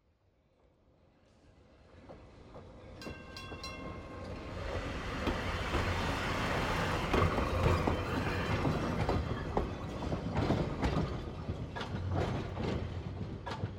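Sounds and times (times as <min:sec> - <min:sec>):
trolley passing: 0:02.1 - 0:13.7
trolley bell ringing: 0:02.9 - 0:05.9.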